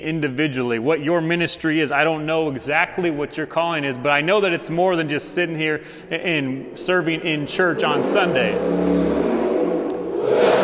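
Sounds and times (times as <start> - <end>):
speech: 0.0 - 9.2
car engine revving and accelerating outside: 6.7 - 10.6.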